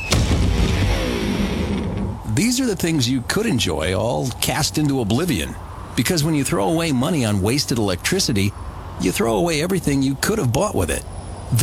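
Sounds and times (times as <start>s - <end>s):
electric guitar hurled off a 20-story building crashing to the ground: 0.0s - 2.2s
speech: 2.4s - 11.6s.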